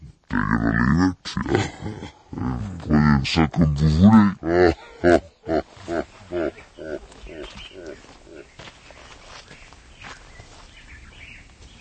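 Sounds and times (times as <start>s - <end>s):
man growling like a tiger: 0.3s - 8.5s
speech: 0.4s - 2.1s, 3.2s - 5.2s.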